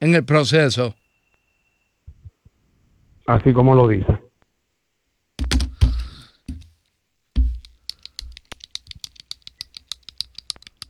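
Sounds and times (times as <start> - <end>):
speech: 0.0 - 1.0, 3.3 - 4.2
ballpoint pen knocking from handling: 5.4 - 6.7, 7.4 - 10.8.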